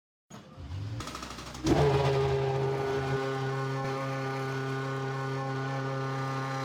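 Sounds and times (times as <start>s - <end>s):
F1 V8 engine idling: 0.4s - 6.5s.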